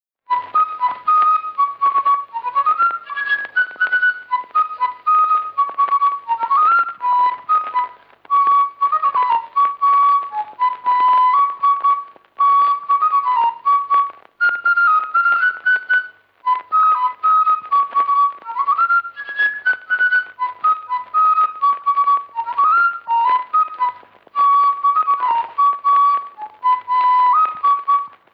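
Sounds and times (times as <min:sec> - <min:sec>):
polka folk music: 0:00.2 - 0:28.3.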